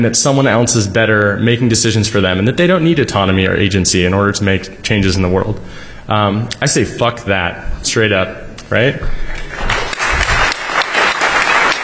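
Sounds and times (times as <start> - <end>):
speech: 0.0 - 9.7
audience applause: 9.5 - 11.8.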